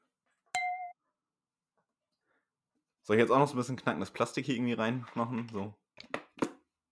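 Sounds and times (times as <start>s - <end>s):
fingernail tapping a wine glass with bright ringing tone: 0.6s - 0.9s
speech: 3.1s - 6.1s.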